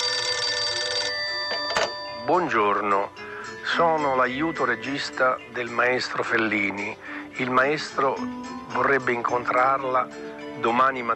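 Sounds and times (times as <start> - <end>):
telephone bell ringing: 0.0 - 3.3
speech: 2.3 - 11.1.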